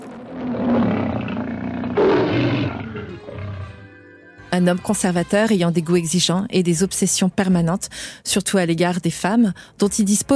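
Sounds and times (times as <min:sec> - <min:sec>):
lion roaring in a film studio logo intro: 0:00.0 - 0:03.8
speech: 0:04.6 - 0:10.3.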